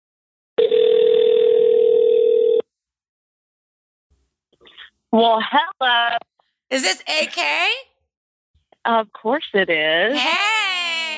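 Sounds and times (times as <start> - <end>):
electronic phone ringing tone of an outgoing call: 0.6 - 2.7
speech: 5.1 - 7.9, 8.8 - 10.5.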